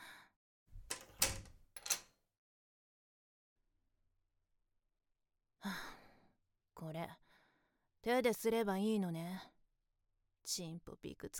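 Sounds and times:
front door swinging shut with a rattling thud: 0:00.8 - 0:02.0
sharp metallic click of a front door lock being turned: 0:00.8 - 0:02.1
speech: 0:06.8 - 0:07.3, 0:08.0 - 0:09.5, 0:10.4 - 0:11.3.

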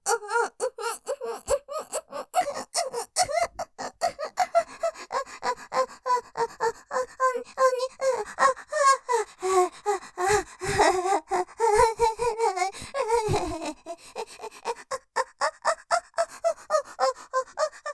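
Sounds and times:
woman moaning breathily in stereo ASMR: 0:00.1 - 0:17.9.

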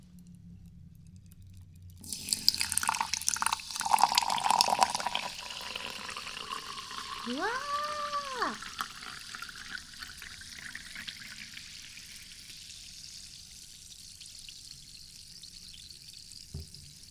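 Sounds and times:
freshly poured carbonated drink fizzing: 0:02.0 - 0:12.4
speech: 0:07.3 - 0:07.7, 0:08.4 - 0:08.7.

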